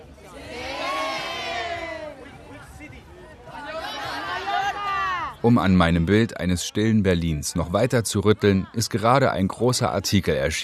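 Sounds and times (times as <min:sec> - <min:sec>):
busy crowd of tourists in Berlin chattering in many languages: 0:00.0 - 0:10.6
raised cheer-like shouts from tourist crowd: 0:00.2 - 0:02.9, 0:03.5 - 0:05.4
speech: 0:05.4 - 0:10.6.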